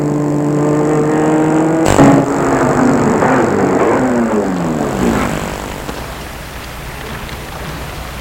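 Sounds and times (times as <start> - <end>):
car engine humming: 0.0 - 8.1
thud: 1.9 - 6.1.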